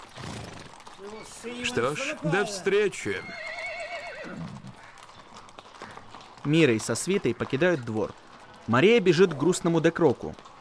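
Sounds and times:
ridden horse neighing: 0.2 - 5.1
speech: 1.0 - 3.5, 4.2 - 4.6, 6.4 - 10.4.

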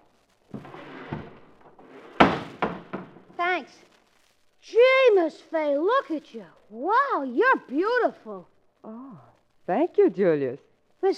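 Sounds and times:
back door knocking and bumping as it swings open: 2.1 - 3.2
speech: 3.6 - 3.9, 4.6 - 9.0, 9.7 - 11.1.

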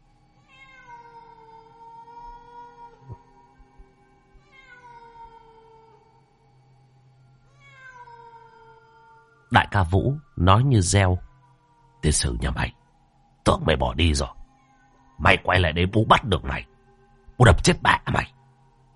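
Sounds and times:
cat yowling pitifully near a house kitchen: 0.4 - 3.3, 4.4 - 6.2, 7.5 - 12.8
speech: 9.5 - 11.3, 12.0 - 12.7, 13.5 - 14.4, 15.2 - 16.7, 17.4 - 18.4.

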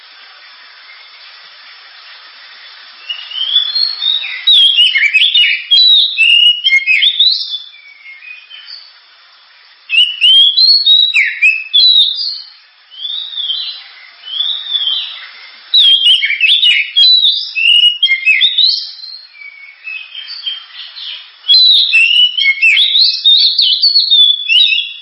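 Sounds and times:
Oriental magpie-robin loud varied song: 3.0 - 8.9, 9.9 - 24.9.

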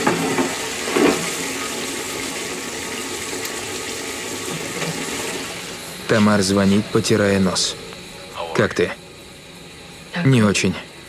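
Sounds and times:
toilet cistern flushing: 0.0 - 7.7
speech: 6.1 - 7.9, 8.6 - 9.0, 10.2 - 10.9.

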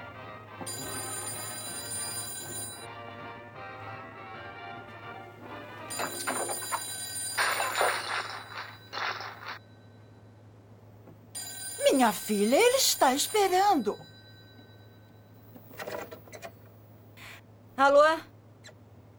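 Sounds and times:
speech: 0.6 - 1.1, 12.0 - 14.1, 17.8 - 18.3
telephone bell ringing: 0.6 - 2.9, 5.9 - 10.1, 11.3 - 16.0.

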